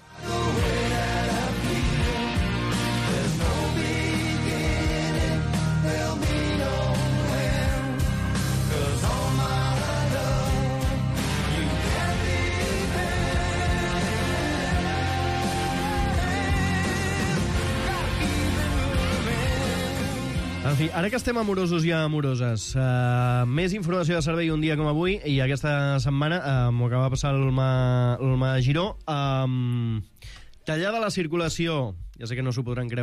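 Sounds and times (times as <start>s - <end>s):
chart-topping romantic comedy film soundtrack song with strong bass line: 0.0s - 25.5s
speech: 20.8s - 33.0s.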